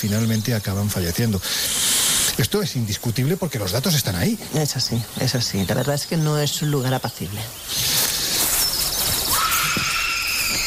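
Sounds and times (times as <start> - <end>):
speech: 0.0 - 1.8, 2.4 - 7.9
steady noise: 0.0 - 10.6
high drawn-out scream-like cry: 9.3 - 10.6.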